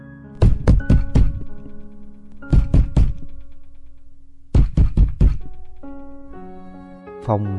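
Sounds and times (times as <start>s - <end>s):
heavy pounding on a bedroom door: 0.4s - 6.0s
speech: 7.2s - 7.5s.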